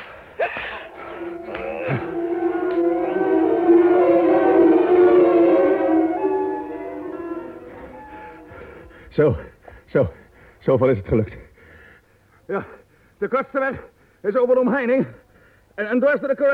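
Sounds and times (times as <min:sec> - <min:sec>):
wolf howling: 0:00.5 - 0:08.6
speech: 0:01.9 - 0:02.1, 0:09.2 - 0:11.4, 0:12.5 - 0:15.2, 0:15.8 - 0:16.5.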